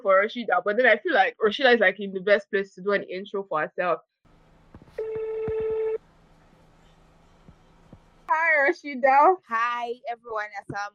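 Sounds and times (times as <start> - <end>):
speech: 0.0 - 4.1, 8.3 - 10.9
telephone dialing tone beep: 5.0 - 6.0.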